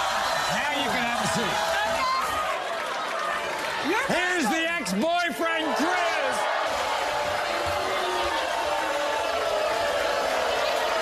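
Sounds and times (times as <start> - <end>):
studio audience booing: 0.0 - 11.0
speech: 0.8 - 1.8, 3.9 - 6.6.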